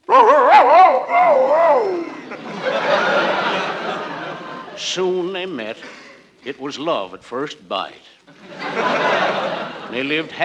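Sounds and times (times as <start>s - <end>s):
voice imitating a male dog barking and howling: 0.0s - 2.2s
softer noisy wash of sound: 0.0s - 10.4s
laughter: 0.1s - 5.2s, 8.3s - 10.4s
speech: 4.8s - 10.4s.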